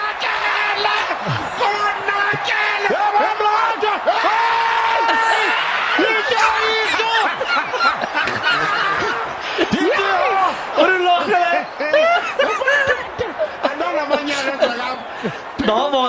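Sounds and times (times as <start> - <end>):
laughter: 0.0 - 16.0
rugby stadium crowd screaming and yelling: 0.0 - 16.0.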